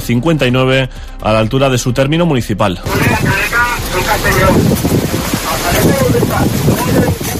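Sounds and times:
speech: 0.0s - 7.3s
firefighters working at a forest fire: 2.8s - 7.3s
strong wind gusts at night at a forest fire: 2.8s - 7.3s.

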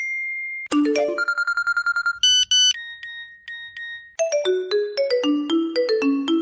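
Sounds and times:
looping melodic mobile phone ringtone: 0.0s - 6.4s
mobile phone steady tone: 0.9s - 4.1s
mobile phone rapid electronic beeps: 1.2s - 4.2s.

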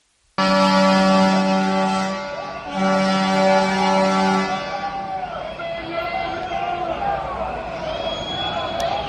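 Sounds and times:
honking: 0.4s - 5.1s
loud sustained horn blasts at a street protest: 0.4s - 5.1s
noisy outdoor crowd at a street protest: 0.4s - 9.0s
scattered shouts in a crowd: 4.3s - 9.0s.

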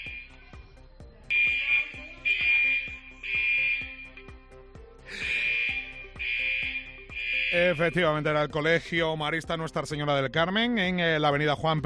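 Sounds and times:
school fire alarm ringing: 0.0s - 0.4s, 1.3s - 4.4s, 5.2s - 8.3s
speech: 7.5s - 11.8s.

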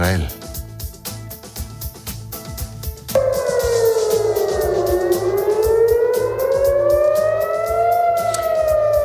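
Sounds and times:
steady rhythmic pulse: 0.2s - 9.0s
air raid sirens wailing across a city during Iranian attacks: 3.2s - 9.0s.

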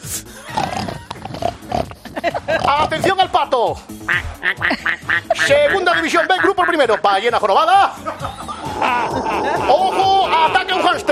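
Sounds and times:
pig grunting: 0.5s - 3.1s, 8.5s - 11.1s
laughter: 2.0s - 2.9s, 4.6s - 7.0s, 7.9s - 11.1s
speech: 2.8s - 11.1s.

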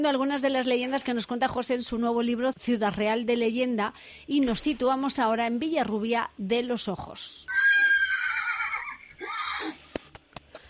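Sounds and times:
speech: 0.0s - 7.8s
horse whinnying: 7.5s - 9.8s.

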